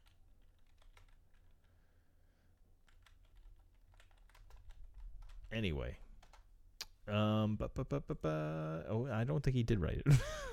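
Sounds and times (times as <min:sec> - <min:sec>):
faint typing on a computer keyboard: 0:00.0 - 0:01.8, 0:02.8 - 0:05.5, 0:06.1 - 0:06.5
speech: 0:05.5 - 0:06.0, 0:07.1 - 0:10.4.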